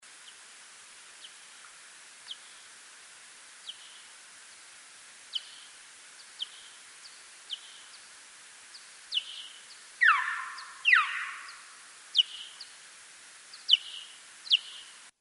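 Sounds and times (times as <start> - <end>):
pallid bat social calls by the Yakima River: 10.0 - 12.5.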